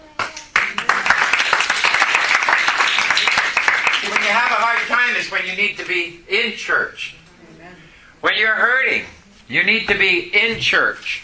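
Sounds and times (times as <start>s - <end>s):
crowd applauding: 0.2s - 5.2s
speech: 5.2s - 7.2s, 8.2s - 11.2s.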